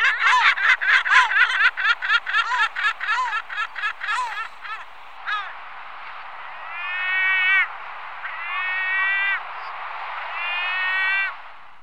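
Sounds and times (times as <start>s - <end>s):
lesser black-backed gull giving long steady nasal calls: 0.0s - 5.5s, 6.7s - 9.4s, 10.4s - 11.3s
laughter: 0.0s - 11.4s
constant background noise: 0.0s - 11.8s.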